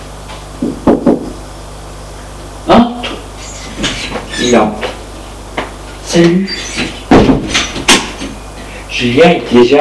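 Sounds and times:
knocking on a wooden bedroom door: 0:00.6 - 0:01.3, 0:07.1 - 0:07.5
speech: 0:04.5 - 0:04.9, 0:06.1 - 0:06.6, 0:09.0 - 0:09.8.

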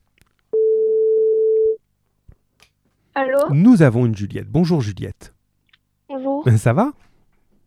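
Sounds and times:
ringback tone on an outgoing phone call: 0:00.6 - 0:01.8
speech: 0:03.2 - 0:05.4, 0:06.4 - 0:07.1.

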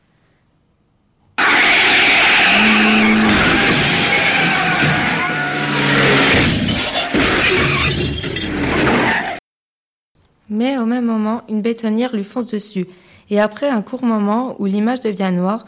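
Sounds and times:
bumper car crashing, shattering impacts: 0:01.4 - 0:09.4
bumper car squealing skids: 0:01.4 - 0:09.4
bumper car motor at full speed: 0:02.1 - 0:09.3
speech: 0:10.6 - 0:15.6.

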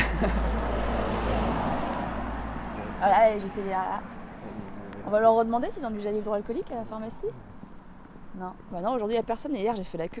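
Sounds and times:
laughter: 0:00.0 - 0:00.6
car passing by on the street: 0:00.0 - 0:05.5
car low engine and tire noise on the street: 0:00.0 - 0:09.0
speech: 0:03.0 - 0:07.5, 0:08.3 - 0:10.1.

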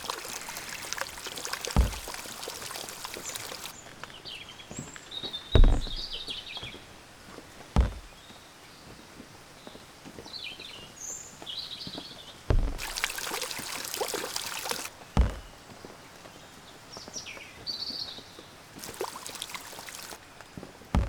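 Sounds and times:
dull thumps: 0:00.0 - 0:03.7, 0:05.6 - 0:06.4, 0:07.8 - 0:08.2, 0:12.5 - 0:15.6
steady rushing water-like noise: 0:00.0 - 0:03.8, 0:12.5 - 0:14.9, 0:18.8 - 0:20.2
birds chirping: 0:00.0 - 0:06.9, 0:09.6 - 0:18.2, 0:18.8 - 0:21.0.

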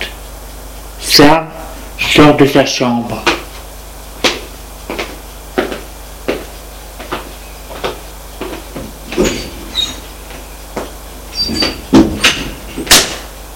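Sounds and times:
speech: 0:01.2 - 0:01.5, 0:02.1 - 0:03.3
door creaking open: 0:09.1 - 0:10.1, 0:11.3 - 0:13.2.

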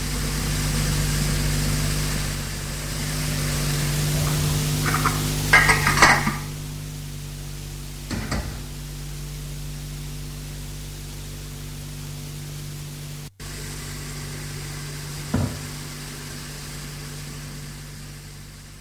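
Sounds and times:
vacuum cleaner running with a whooshing drone and motor hum: 0:00.0 - 0:18.7
plates and cutlery clinking while washing dishes: 0:04.3 - 0:06.6.

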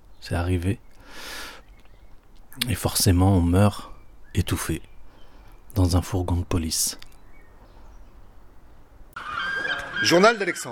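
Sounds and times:
speech: 0:00.2 - 0:01.4, 0:02.6 - 0:04.9, 0:05.8 - 0:07.1, 0:10.0 - 0:10.7
seagull squawking: 0:09.2 - 0:10.7.

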